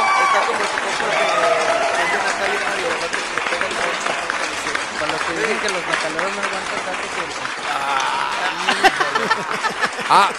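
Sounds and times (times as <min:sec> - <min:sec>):
cheering: 0:00.0 - 0:10.3
crowd clapping: 0:00.0 - 0:10.3
laughter: 0:00.0 - 0:10.3
speech: 0:05.8 - 0:10.3.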